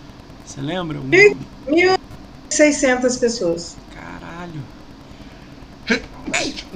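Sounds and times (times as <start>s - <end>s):
speech: 0.5s - 2.0s, 2.6s - 3.8s, 5.9s - 6.7s
sneeze: 6.3s - 6.7s.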